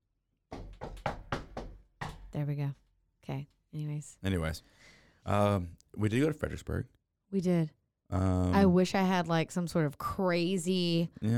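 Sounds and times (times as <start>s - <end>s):
knocking on a wooden surface: 0.5s - 2.3s
speech: 2.4s - 11.3s.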